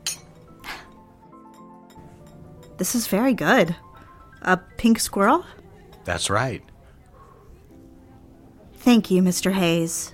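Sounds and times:
cocktail glass and martini glass clinking in a toast: 0.0s - 6.4s
speech: 2.8s - 6.7s, 8.8s - 10.1s.

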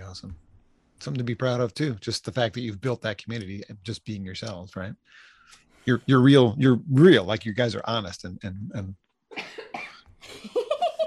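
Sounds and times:
speech: 0.2s - 0.4s, 1.0s - 9.0s
person coughing during a music interview: 9.4s - 10.0s.

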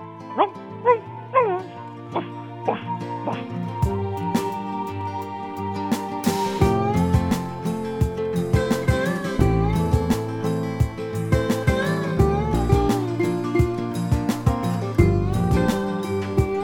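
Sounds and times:
person imitating a dog barking: 0.4s - 3.4s
music with a steady beat: 2.2s - 16.6s.

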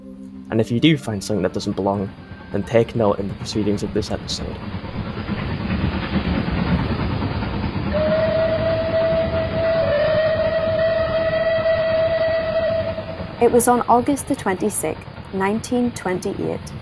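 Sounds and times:
train rumbling along: 0.0s - 16.8s
speech: 0.5s - 5.0s, 13.4s - 16.8s
long sustained train whistle: 1.4s - 4.6s, 7.8s - 14.3s.

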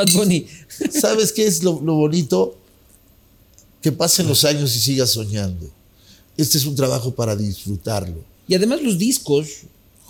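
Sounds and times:
glasses clinking in a toast: 0.0s - 0.4s
speech: 0.0s - 2.6s, 3.8s - 5.8s, 6.4s - 10.0s.

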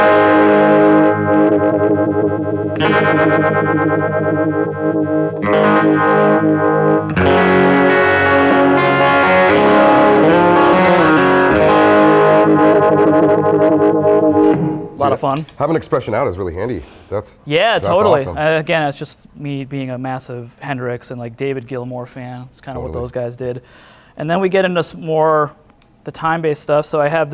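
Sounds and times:
electric guitar through a Univibe-style vibe pedal playing distorted chords and riffs: 0.0s - 15.0s
speech: 2.8s - 5.5s, 15.0s - 27.3s.

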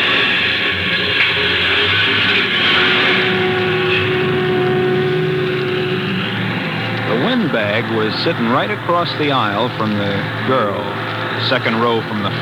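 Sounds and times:
bus engine rumbling as the bus pulls away onto the highway: 0.0s - 12.3s
faint whining tone: 0.0s - 12.3s
speech: 7.9s - 12.3s.

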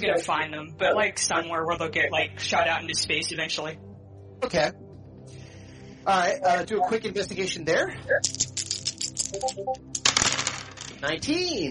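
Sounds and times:
speech: 0.0s - 4.8s, 6.0s - 8.7s, 9.3s - 10.0s, 11.0s - 11.7s
dice rattling and clattering across a hard table: 8.2s - 11.0s.

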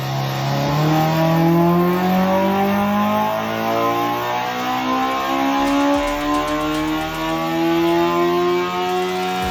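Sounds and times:
car engine revving to 11,000 RPM near redline: 0.0s - 9.5s.

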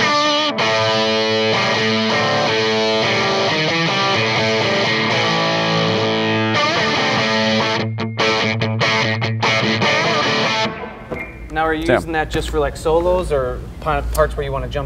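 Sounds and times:
electric guitar played through a fuzz pedal: 0.0s - 11.0s
speech: 11.8s - 14.8s.

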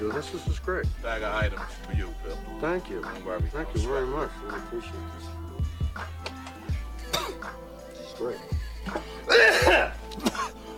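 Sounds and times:
speech: 0.0s - 6.2s, 8.2s - 10.0s
harsh cough with throat clearing: 7.1s - 7.5s, 8.9s - 10.6s.

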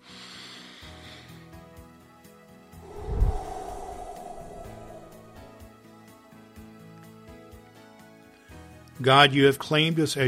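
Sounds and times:
slow deep breath in and out: 2.8s - 5.7s
speech: 9.0s - 10.2s.

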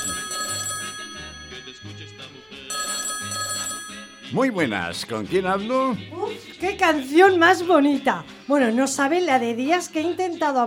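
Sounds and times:
telephone bell ringing for an incoming radio phone-in call: 0.0s - 4.6s
speech: 4.3s - 10.6s.

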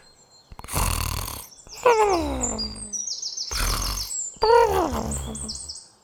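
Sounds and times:
small creature snoring with a drawn-out raspy breath: 0.5s - 2.9s, 3.5s - 5.7s
speech: 1.8s - 2.8s, 4.9s - 5.7s.

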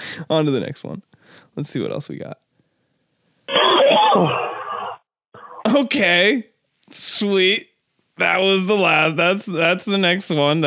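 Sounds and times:
speech: 0.2s - 2.4s, 4.1s - 4.5s, 5.7s - 10.6s
loud raspy cough: 3.5s - 5.6s.

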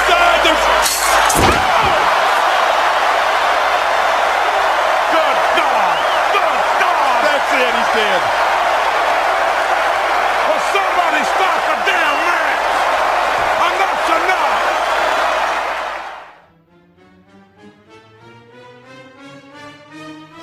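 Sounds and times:
scattered shouting: 0.0s - 16.3s
continuous roar of crowd noise: 0.0s - 16.4s
body slamming down from flying elbow jump off a chair: 1.1s - 2.4s.

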